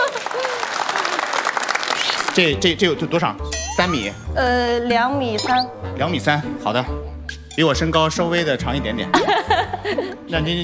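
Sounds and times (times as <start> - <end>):
laughter: 0.0 - 1.4, 9.0 - 10.5
audience applauding: 0.0 - 2.6
speech: 2.4 - 10.6.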